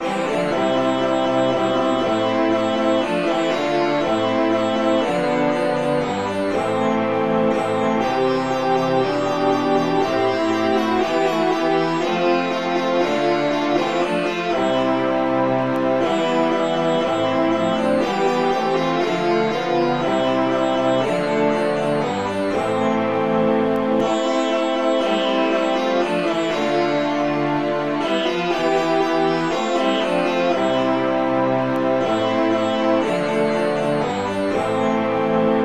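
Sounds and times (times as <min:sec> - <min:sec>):
virtual sitar playing anthem: 0:00.0 - 0:35.6.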